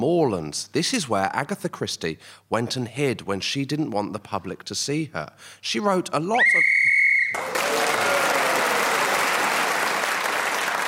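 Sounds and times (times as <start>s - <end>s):
speech: 0.0s - 7.8s
referee's whistle blast marking end of time in a game: 6.4s - 7.4s
audience applause: 7.3s - 10.8s.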